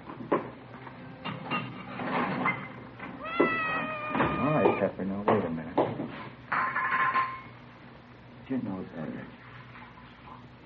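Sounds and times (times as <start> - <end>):
faint room noise: 0.0 - 10.6
Siamese cat meowing for food: 3.0 - 5.0
speech: 8.5 - 9.4.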